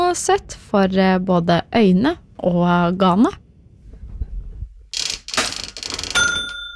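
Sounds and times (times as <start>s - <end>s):
speech: 0.2s - 3.4s
old mechanical cash register bell chime: 6.0s - 6.7s.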